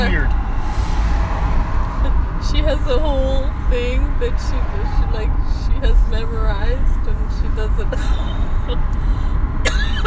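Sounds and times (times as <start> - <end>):
steady low rumble: 0.0 - 10.0
speech: 4.2 - 9.3
cough: 9.6 - 10.0.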